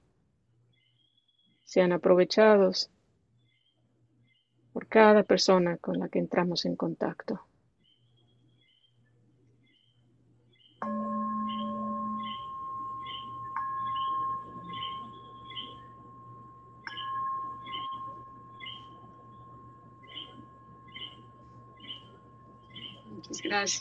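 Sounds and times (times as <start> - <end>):
low hum: 0.0 - 23.8
speech: 1.7 - 3.0, 4.8 - 7.5, 23.5 - 23.8
clear ringing tone: 10.8 - 23.8
coquí frogs chirping at night in Puerto Rico: 10.8 - 23.8.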